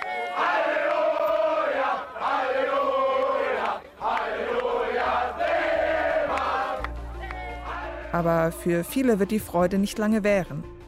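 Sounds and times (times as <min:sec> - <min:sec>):
large crowd in Berlin cheering and shouting at a celebration: 0:00.0 - 0:08.2
speech: 0:08.1 - 0:10.8.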